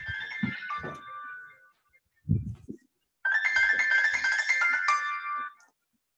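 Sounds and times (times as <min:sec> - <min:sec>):
mobile phone ringtone playing bright electronic melody: 0:00.0 - 0:01.8, 0:03.2 - 0:05.7.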